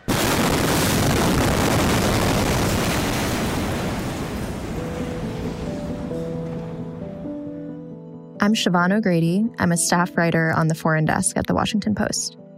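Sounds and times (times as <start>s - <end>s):
massive explosion in Beirut Lebanon: 0.0s - 7.2s
speech: 8.4s - 12.4s.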